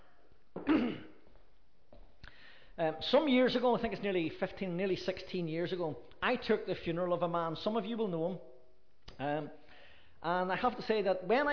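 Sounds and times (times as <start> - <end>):
person clearing throat: 0.6 - 1.3
speech: 2.8 - 8.5, 9.2 - 9.6, 10.2 - 11.5.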